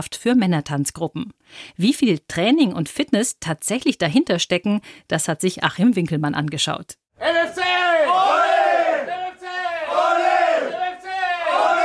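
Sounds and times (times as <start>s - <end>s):
speech: 0.0s - 7.6s
men's dance group battle cry shouted in unison at a Bavarian championship: 7.2s - 11.8s.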